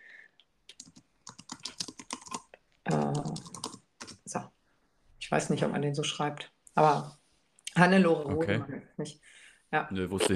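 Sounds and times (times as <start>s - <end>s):
typing on a computer keyboard: 0.7s - 4.3s
speech: 5.3s - 7.2s, 7.8s - 10.3s.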